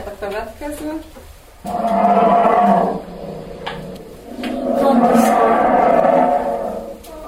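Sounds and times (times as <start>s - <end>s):
speech: 0.2s - 2.4s
brown bear growling in deep rumbles: 1.6s - 7.2s.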